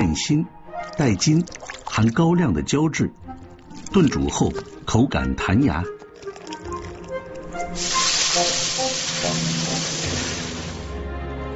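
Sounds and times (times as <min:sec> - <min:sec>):
music: 0:00.0 - 0:11.5
speech: 0:00.2 - 0:03.2, 0:03.9 - 0:06.0
ginger and scallion stir-frying in hot oil in a wok: 0:07.7 - 0:10.9.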